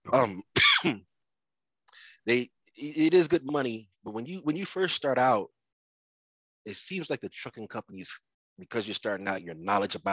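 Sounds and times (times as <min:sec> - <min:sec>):
speech: 0:00.1 - 0:01.0, 0:02.2 - 0:05.6, 0:06.6 - 0:10.1
harsh throat-clearing coughs from a healing person: 0:00.6 - 0:01.0.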